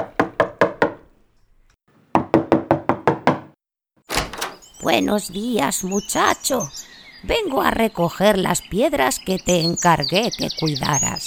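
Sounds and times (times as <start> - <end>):
sharp hollow knocks on a wooden door: 0.0 - 1.1, 2.2 - 3.6
speech: 4.8 - 11.2.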